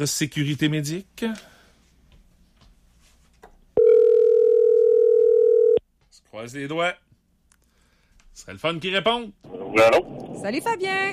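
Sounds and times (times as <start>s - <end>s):
speech: 0.0s - 1.5s, 6.4s - 7.0s, 8.4s - 11.1s
telephone dial tone while calling a contest winner: 3.8s - 5.8s.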